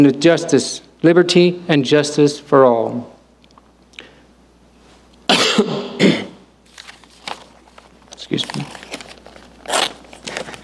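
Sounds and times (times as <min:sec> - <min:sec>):
speech: 0:00.0 - 0:03.2, 0:05.4 - 0:05.8
paper with tape crinkling: 0:06.6 - 0:10.6.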